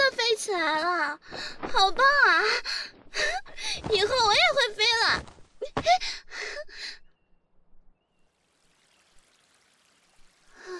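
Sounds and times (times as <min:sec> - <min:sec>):
speech: 0:00.5 - 0:07.0
faint stream water trickle: 0:08.1 - 0:10.7.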